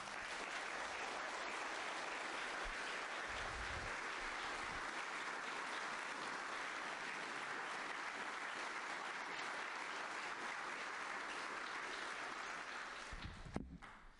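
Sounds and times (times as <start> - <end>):
large church audience applauding parish staff: 0.0 - 14.0.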